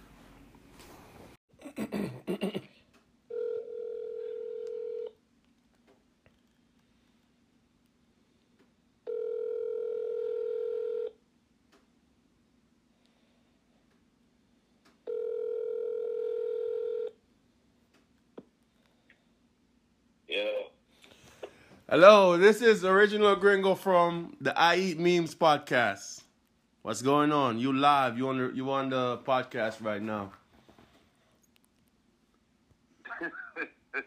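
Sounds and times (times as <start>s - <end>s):
telephone ringback tones: 3.3s - 5.1s, 9.1s - 11.1s, 15.1s - 17.2s
speech: 21.9s - 26.2s, 26.8s - 30.4s.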